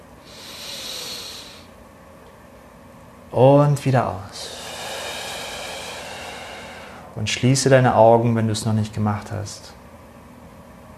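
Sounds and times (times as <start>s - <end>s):
deep inhalation through the nose: 0.2s - 1.8s, 4.4s - 7.2s
speech: 3.3s - 4.6s, 7.2s - 9.8s.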